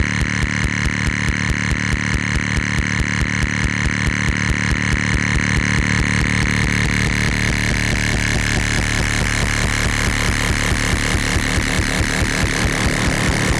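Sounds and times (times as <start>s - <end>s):
pulse cutting away: 0.0s - 13.5s.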